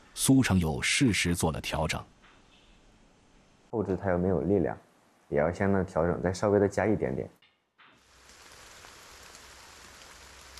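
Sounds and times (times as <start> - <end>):
speech: 0.2 - 2.2, 3.7 - 7.4
steady rain: 8.0 - 10.5.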